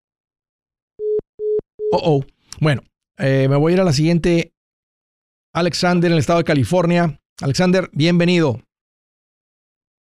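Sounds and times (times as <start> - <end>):
telephone tone beeps after a dropped WhatsApp call: 1.0 - 2.0
speech: 1.9 - 4.5, 5.6 - 8.7.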